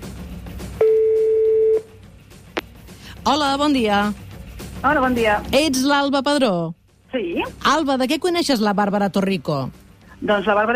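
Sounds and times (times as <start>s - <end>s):
telephone ringback tone for a call to a mobile phone: 0.8s - 1.9s
speech: 3.2s - 4.2s, 4.8s - 10.7s.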